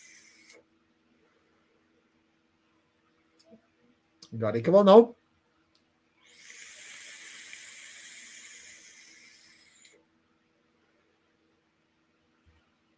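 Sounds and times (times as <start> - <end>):
dripping atomizer vape coil sizzling during a draw: 0.0 - 0.6, 6.2 - 10.0
speech: 3.5 - 3.7, 4.3 - 5.2.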